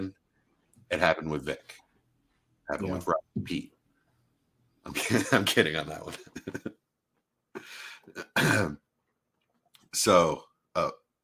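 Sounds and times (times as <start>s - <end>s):
speech: 0.9s - 1.8s, 2.7s - 3.7s, 4.8s - 6.8s, 7.6s - 8.8s, 9.9s - 11.0s
person clearing throat: 8.2s - 8.8s
person coughing: 8.2s - 8.8s.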